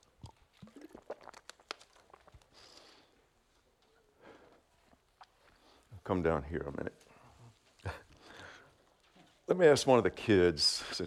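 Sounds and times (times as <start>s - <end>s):
plastic water bottle crinkling and clicking: 0.0s - 3.0s
person sipping and swallowing water: 0.0s - 3.2s, 4.6s - 5.9s
speech: 6.1s - 7.1s, 9.5s - 11.0s.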